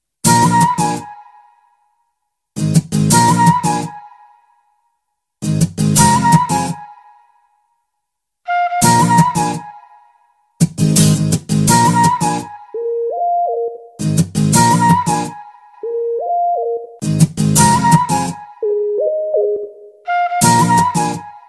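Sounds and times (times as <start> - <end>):
guitar: 0.2 - 1.6, 2.6 - 4.5, 5.4 - 7.3, 8.5 - 21.4
flute: 0.3 - 2.0, 3.1 - 4.9, 6.0 - 7.8, 8.5 - 10.6, 11.6 - 13.8, 14.6 - 16.9, 17.6 - 21.4.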